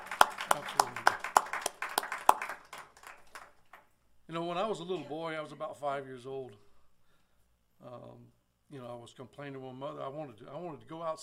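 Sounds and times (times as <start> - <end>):
audience clapping hands in praise: 0.0 - 3.9
speech: 4.3 - 6.7, 7.8 - 11.2.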